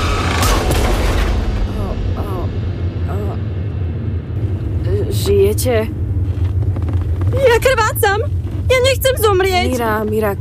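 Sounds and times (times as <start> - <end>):
car at about 200 km/h crashing on a bridge: 0.0 - 1.6
steady low rumble: 0.0 - 10.3
speech: 5.6 - 6.0, 7.4 - 10.3.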